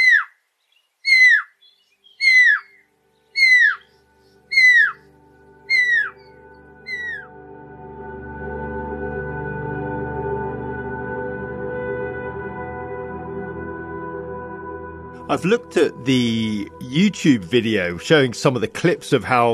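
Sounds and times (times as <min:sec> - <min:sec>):
recorded birdsong played back to animals: 0:00.0 - 0:07.3
speech: 0:15.3 - 0:19.5.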